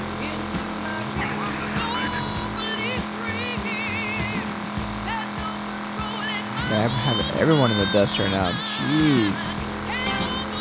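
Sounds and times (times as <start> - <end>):
video game racing car engine roaring at high speed: 0.0 - 10.5
speech: 6.7 - 9.7.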